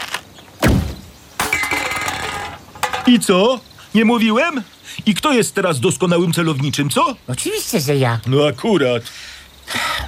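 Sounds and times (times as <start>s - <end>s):
arrow shot from a bow hitting a target: 0.6s - 2.0s
second impact trailing into a rattling noisy ring: 0.6s - 3.2s
speech: 3.1s - 9.4s.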